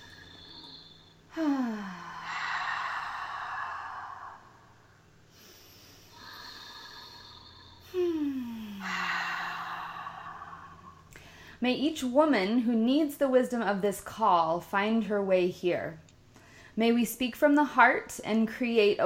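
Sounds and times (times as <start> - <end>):
deep breaths in through the nose and out through the mouth: 0.0 - 11.6
speech: 11.6 - 16.0, 16.8 - 19.0.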